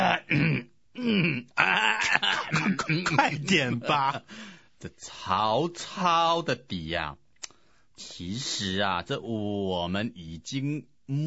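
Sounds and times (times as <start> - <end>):
man clearing his throat during a comic dialogue performance: 0.0 - 4.3
speech: 2.9 - 7.2, 8.0 - 11.2.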